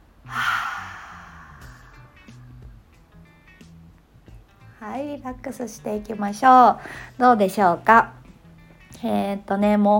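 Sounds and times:
deep breath in and out during a guided relaxation breathing exercise: 0:00.3 - 0:02.6
speech: 0:04.8 - 0:08.2, 0:09.0 - 0:09.9.

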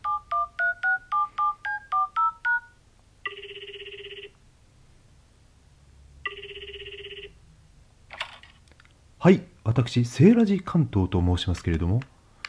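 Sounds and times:
touch-tone beeps of a telephone number being dialed: 0:00.0 - 0:03.4
long telephone ringback tones: 0:00.0 - 0:04.3, 0:06.2 - 0:07.4
speech: 0:09.2 - 0:12.1.

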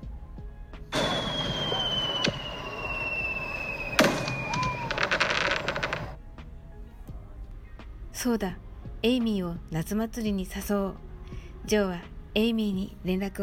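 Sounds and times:
whistling firework rocket streaking upward: 0:00.9 - 0:06.2
sharp firework booms: 0:01.0 - 0:06.2
speech: 0:08.2 - 0:11.1, 0:11.7 - 0:13.4.

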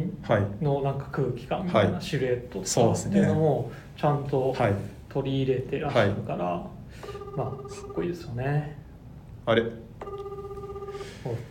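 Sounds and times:
speech: 0:00.3 - 0:08.8, 0:09.5 - 0:10.2, 0:11.0 - 0:11.4
sustained electronic phone ring: 0:07.0 - 0:08.3, 0:10.0 - 0:11.4.

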